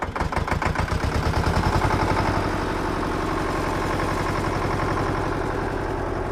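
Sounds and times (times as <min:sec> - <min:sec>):
large red tractor diesel engine starting and idling in a farm barn: 0:00.0 - 0:06.3.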